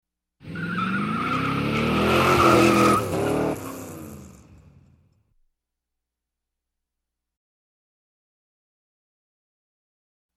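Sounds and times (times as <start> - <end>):
high performance car doing a burnout: 0.4 - 5.0.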